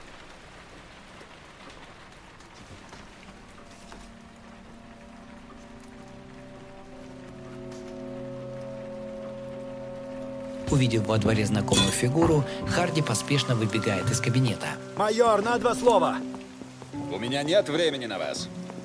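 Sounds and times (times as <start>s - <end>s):
rain falling in a courtyard: 0.0s - 18.8s
sustained music: 3.7s - 18.8s
speech: 10.7s - 16.3s, 17.2s - 18.6s.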